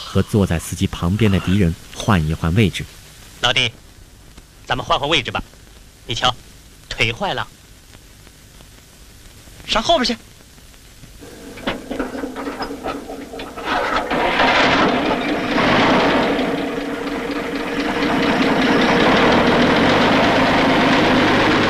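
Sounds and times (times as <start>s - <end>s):
speech: 0.1s - 3.8s, 4.7s - 7.6s, 9.7s - 10.3s
truck engine starting and running: 11.2s - 21.6s.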